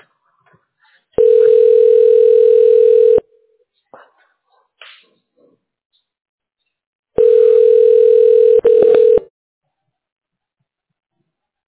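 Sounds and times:
telephone ringing tone as a call is connected: 1.2 - 3.2, 7.2 - 9.3.

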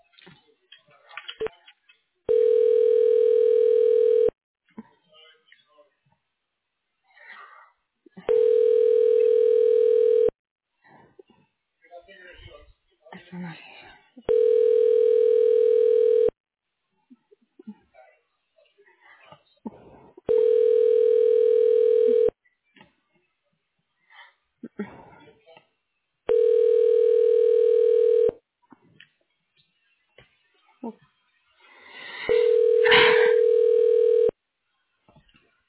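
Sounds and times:
telephone line tones during call transfer to voicemail: 2.3 - 4.3, 8.3 - 10.3, 14.3 - 16.3, 20.3 - 22.3, 26.3 - 28.3, 32.3 - 34.3.

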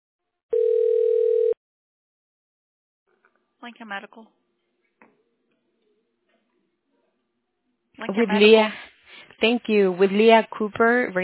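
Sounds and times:
telephone tone while a call is transferred to an extension: 0.6 - 1.6
speech: 3.6 - 4.4, 8.0 - 8.8, 9.4 - 11.2.

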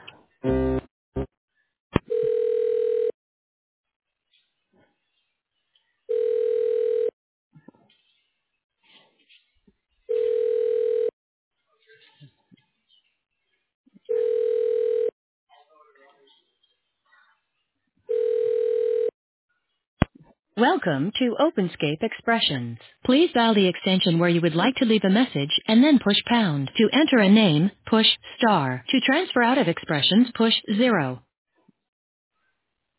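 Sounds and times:
telephone ringback tones while a call is transferred to an extension: 2.1 - 3.1, 6.1 - 7.1, 10.1 - 11.1, 14.1 - 15.1, 18.1 - 19.1
speech: 20.6 - 31.2.

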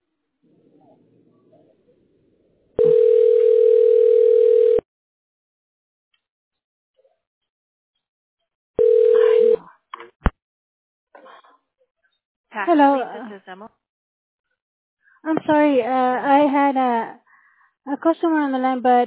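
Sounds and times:
telephone dial tone on a line being dialed: 2.8 - 4.8, 8.8 - 9.6
speech: 12.7 - 13.8, 15.2 - 17.2, 17.8 - 19.0.

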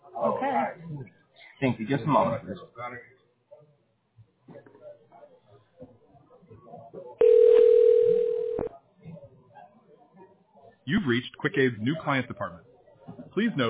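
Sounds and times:
people talking quietly: 0.0 - 13.6
speech: 0.4 - 3.2, 10.9 - 12.7, 13.4 - 13.6
telephone line single-pitched tone while dialing: 7.2 - 8.7.

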